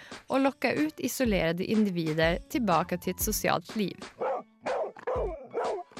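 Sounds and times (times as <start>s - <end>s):
speech: 0.3s - 4.3s
puppies barking and yipping: 4.2s - 5.9s.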